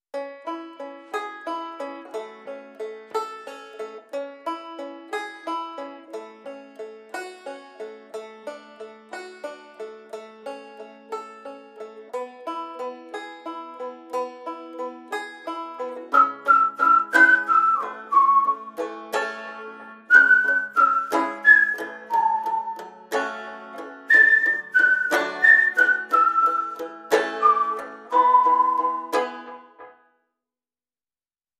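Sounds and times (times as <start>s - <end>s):
banjo: 0.1s - 30.1s
whistle: 16.1s - 18.8s, 20.1s - 23.0s, 24.1s - 29.7s.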